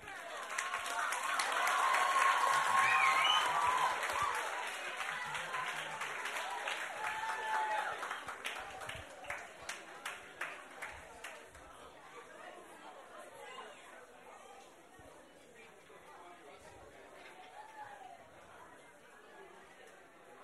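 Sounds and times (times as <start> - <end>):
crowd applauding: 0.0 - 11.6.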